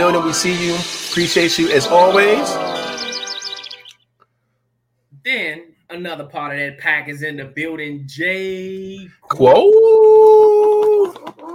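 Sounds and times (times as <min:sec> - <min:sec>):
speech: 0:00.1 - 0:02.9, 0:06.0 - 0:11.5
person imitating a wolf howl: 0:01.8 - 0:03.1, 0:09.4 - 0:11.5.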